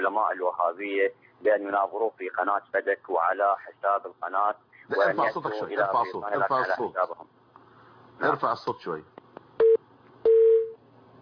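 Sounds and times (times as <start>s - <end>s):
speech: 0.1s - 7.4s, 8.2s - 9.2s
telephone tones as a call connects: 9.6s - 10.8s.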